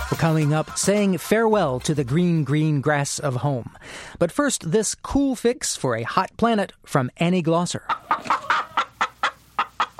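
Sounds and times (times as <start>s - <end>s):
speech: 0.2s - 8.3s
chicken clucking: 7.8s - 9.9s.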